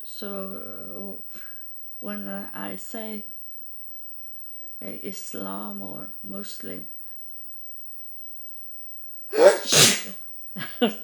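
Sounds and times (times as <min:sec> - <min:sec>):
speech: 0:00.1 - 0:03.3, 0:04.8 - 0:07.0, 0:09.3 - 0:11.0
loud sneeze: 0:09.3 - 0:10.1
soft breathy sounds: 0:09.4 - 0:10.1.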